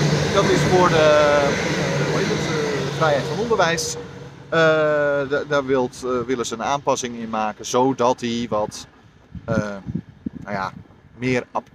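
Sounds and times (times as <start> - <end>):
train rushing past: 0.0 - 9.2
speech: 0.4 - 11.7.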